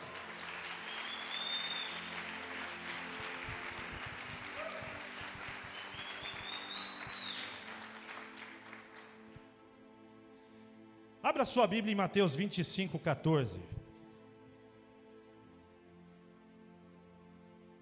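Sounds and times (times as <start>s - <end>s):
audience applauding: 0.0s - 9.3s
whistles from a crowd: 0.7s - 2.2s, 4.0s - 7.7s
speech: 11.3s - 13.8s.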